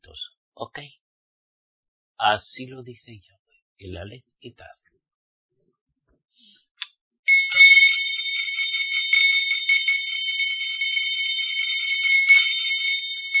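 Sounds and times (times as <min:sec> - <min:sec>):
speech: 0:00.1 - 0:01.0, 0:02.2 - 0:04.8
loud continuous bell ringing with a harsh trilling tone: 0:07.3 - 0:13.3.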